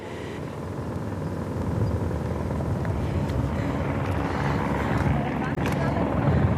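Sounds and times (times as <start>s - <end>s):
rescue helicopter flying low over a riverbed: 0.0s - 6.5s
faint voices: 3.9s - 6.5s.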